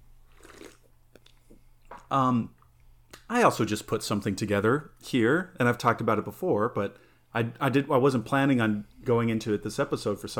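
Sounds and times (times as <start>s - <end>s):
sipping a drink: 0.2s - 2.1s
speech: 2.1s - 2.6s, 3.3s - 10.3s.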